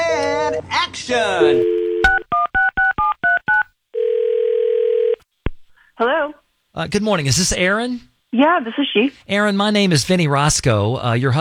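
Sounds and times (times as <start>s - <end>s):
speech: 0.6s - 1.8s, 6.8s - 11.3s
long steady phone tone: 1.4s - 5.2s.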